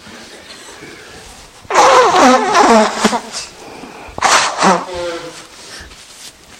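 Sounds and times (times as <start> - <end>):
person blowing their nose: 1.7 - 5.9.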